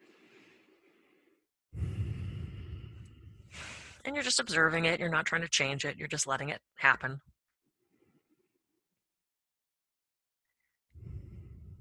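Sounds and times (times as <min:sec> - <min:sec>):
slow breathing during a guided stress-relief relaxation exercise: 0:00.0 - 0:04.0, 0:10.9 - 0:11.7
speech: 0:04.0 - 0:07.3.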